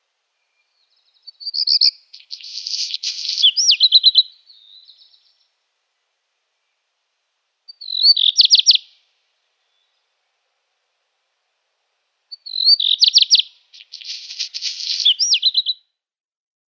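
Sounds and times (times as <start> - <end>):
black redstart singing: 0.4 - 5.5, 7.7 - 10.1, 12.3 - 15.8.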